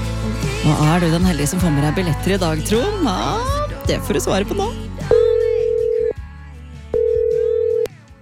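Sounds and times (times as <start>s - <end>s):
soft music: 0.1s - 8.2s
speech: 0.7s - 5.1s
telephone ringback tone on an outgoing call from a radio station: 5.1s - 6.2s, 6.9s - 7.9s.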